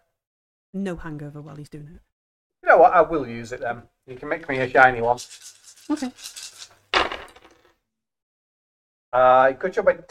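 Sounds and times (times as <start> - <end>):
speech: 0.7 - 2.1, 2.7 - 6.5, 9.1 - 10.0
dice clattering across a hard surface: 4.2 - 7.8.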